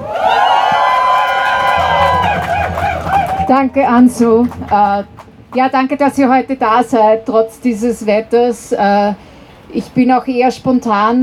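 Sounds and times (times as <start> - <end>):
large crowd of demonstrators cheering and whooping: 0.0 - 5.3
speech: 3.5 - 11.2.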